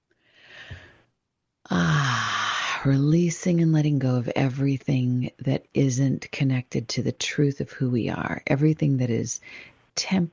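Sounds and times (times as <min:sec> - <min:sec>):
deep breath during a guided meditation: 0:00.2 - 0:01.1, 0:01.7 - 0:02.8, 0:09.4 - 0:09.8
speech: 0:02.8 - 0:10.3.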